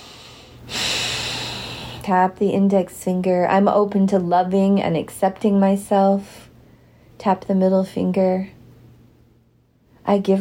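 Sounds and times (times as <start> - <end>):
deep breath drawn in sharply through the nose: 0.0 - 2.0
speech: 2.1 - 6.5, 7.2 - 8.6, 10.1 - 10.3.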